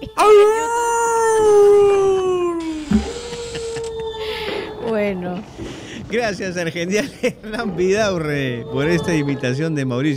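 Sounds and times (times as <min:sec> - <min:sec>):
speech: 0:00.0 - 0:00.8, 0:06.1 - 0:10.1
person imitating a howl: 0:00.0 - 0:05.0
laughter: 0:01.8 - 0:07.9.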